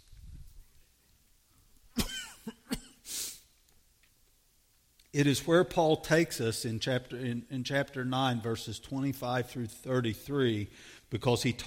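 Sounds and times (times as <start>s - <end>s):
person coughing: 2.0s - 3.3s
speech: 5.2s - 11.6s.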